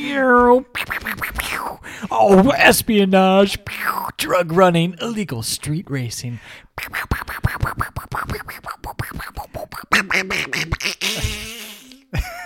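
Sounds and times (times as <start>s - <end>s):
speech: 0.2s - 11.6s
cartoon duck voice quacking in a movie clip: 6.8s - 11.5s.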